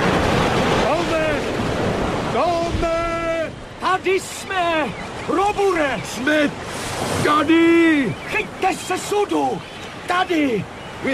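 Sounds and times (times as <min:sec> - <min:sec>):
ocean waves and surf: 0:00.0 - 0:11.1
speech: 0:04.1 - 0:11.1.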